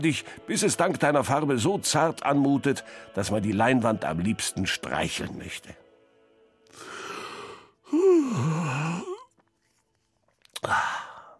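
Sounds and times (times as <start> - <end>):
speech: 0.0 - 5.8, 7.9 - 9.1, 10.6 - 10.9
person yawning: 7.9 - 9.3, 10.6 - 11.3.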